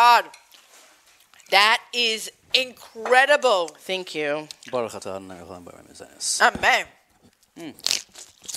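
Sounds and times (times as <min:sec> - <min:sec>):
speech: 0:00.2 - 0:00.4, 0:01.5 - 0:07.0, 0:07.6 - 0:08.5
crisp food being bitten and chewed: 0:07.2 - 0:08.5.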